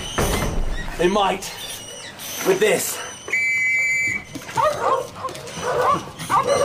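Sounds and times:
speech: 1.0s - 1.6s, 2.4s - 3.1s, 5.7s - 6.6s
steady whistle-like tone: 3.2s - 4.4s
small terriers yapping and barking while hunting rats: 3.8s - 6.6s.

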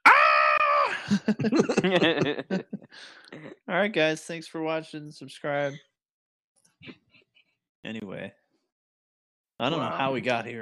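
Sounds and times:
man screaming into a gun: 0.0s - 1.0s
laughter: 0.9s - 3.0s
speech: 1.1s - 5.9s, 6.8s - 7.0s, 7.8s - 8.4s, 9.6s - 10.6s.

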